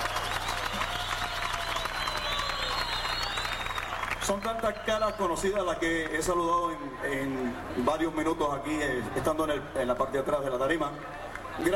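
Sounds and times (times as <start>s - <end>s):
audience clapping: 0.0s - 6.4s
audience cheering: 0.0s - 7.8s
speech: 4.3s - 11.7s.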